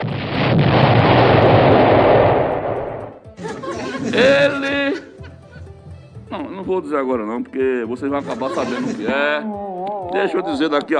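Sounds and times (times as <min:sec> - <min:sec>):
bomb explosion sound effect: 0:00.0 - 0:03.3
laughter: 0:03.4 - 0:05.8, 0:08.1 - 0:10.8
speech: 0:06.6 - 0:10.9.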